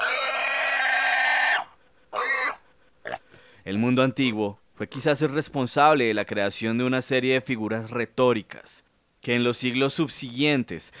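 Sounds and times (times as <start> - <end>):
pig grunting and oinking: 0.0 - 3.2
speech: 3.7 - 10.9.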